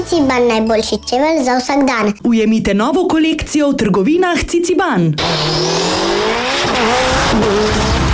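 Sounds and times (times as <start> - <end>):
speech: 0.1 - 8.0
race cars roaring past at a motor racing event in Ilirska Bistrica Slovenia: 5.2 - 8.1.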